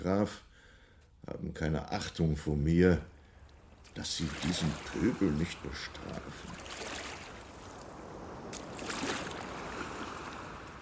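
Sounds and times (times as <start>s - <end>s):
speech: 0.0s - 0.5s, 1.3s - 3.1s, 3.8s - 7.0s
water splashing and swishing: 3.3s - 10.7s.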